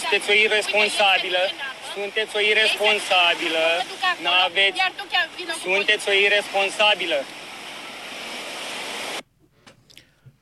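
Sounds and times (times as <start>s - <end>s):
sea waves: 0.0s - 9.2s
speech: 0.1s - 7.4s.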